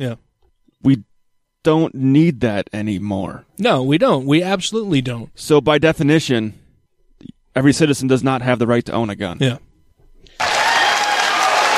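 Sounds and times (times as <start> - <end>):
speech: 0.0 - 6.6, 7.2 - 9.7
crowd applause and cheering: 10.4 - 11.7.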